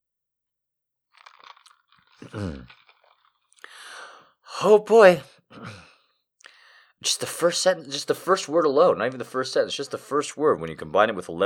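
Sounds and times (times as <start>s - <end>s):
slurping tea: 1.2s - 4.0s
swallow: 1.2s - 4.1s
speech: 2.2s - 2.8s, 4.6s - 5.9s, 7.0s - 11.4s
breathy exhale: 3.6s - 4.3s.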